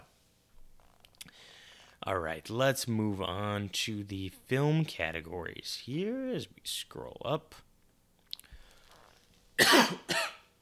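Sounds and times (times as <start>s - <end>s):
speech: 2.0s - 7.6s, 9.6s - 10.2s
person coughing harshly: 9.6s - 10.5s.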